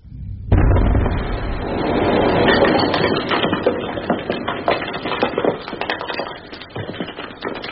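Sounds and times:
quarry blast explosion: 0:00.0 - 0:05.7
falling debris crackling and pattering: 0:00.5 - 0:07.6.

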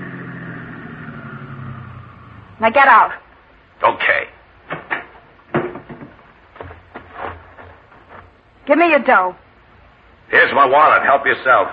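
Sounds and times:
car engine humming as the car pulls over and stops: 0:00.0 - 0:03.7
speech: 0:02.6 - 0:03.2, 0:08.7 - 0:09.4, 0:10.3 - 0:11.7.

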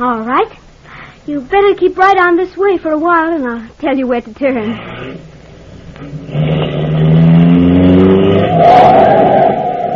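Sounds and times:
speech: 0:00.0 - 0:00.6, 0:01.3 - 0:05.3
car engine accelerating as the car drives past: 0:04.8 - 0:09.9.

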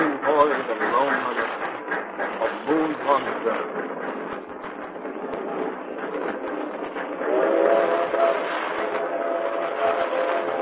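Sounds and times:
train rumbling along tracks: 0:00.0 - 0:10.6
speech: 0:03.1 - 0:04.0.

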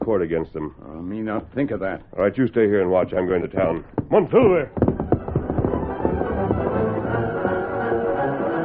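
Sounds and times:
speech: 0:00.1 - 0:04.8
hoofbeats of a horse galloping away: 0:03.6 - 0:08.5.

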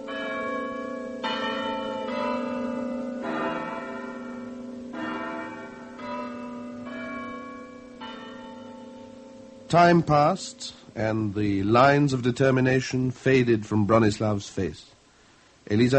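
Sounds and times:
small church bells ringing in an irregular peal: 0:00.0 - 0:10.3
speech: 0:09.7 - 0:15.0, 0:15.7 - 0:15.9.

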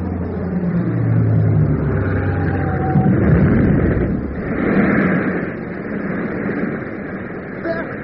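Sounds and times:
aircraft engine drone on a bomb run: 0:00.0 - 0:08.0
bomb explosions: 0:01.7 - 0:08.0.

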